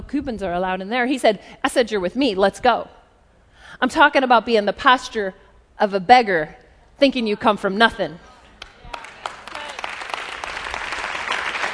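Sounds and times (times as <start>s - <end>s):
speech: 0.1s - 3.0s, 3.7s - 8.3s
audience clapping: 8.6s - 11.7s.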